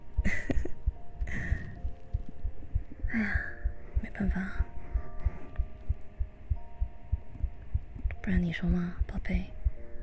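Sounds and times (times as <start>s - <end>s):
rapid heartbeat: 0.1s - 10.0s
soft airy breaths: 0.2s - 8.0s
speech: 8.3s - 9.6s.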